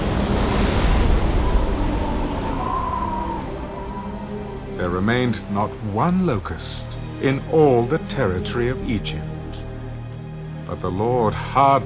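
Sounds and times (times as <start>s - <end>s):
strong wind blowing over open water: 0.0s - 4.4s
surf-like wash of open water: 0.0s - 7.5s
speech: 4.8s - 9.6s, 10.7s - 11.8s.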